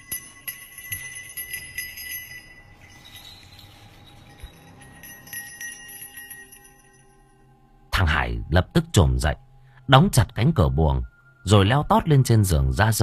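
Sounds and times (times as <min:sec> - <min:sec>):
bell jingling at a gate: 0:00.0 - 0:07.5
speech: 0:08.2 - 0:13.0.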